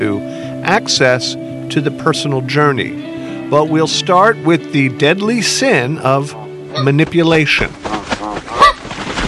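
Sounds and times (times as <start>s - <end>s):
speech: 0.0s - 8.0s
migratory birds honking like geese: 6.7s - 7.0s, 7.7s - 9.1s.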